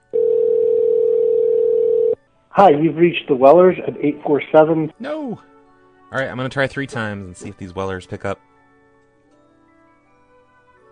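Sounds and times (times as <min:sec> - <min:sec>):
telephone dial tone while calling a number: 0:00.0 - 0:02.2
speech: 0:02.6 - 0:05.5, 0:06.1 - 0:08.5.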